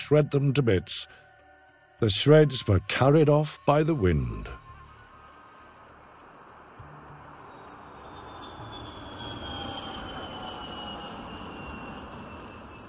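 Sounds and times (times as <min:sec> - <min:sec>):
faint high whine: 0:00.0 - 0:12.8
speech: 0:00.1 - 0:01.2, 0:02.0 - 0:04.6
aircraft engine roar at an airport in Lagos: 0:07.4 - 0:12.8.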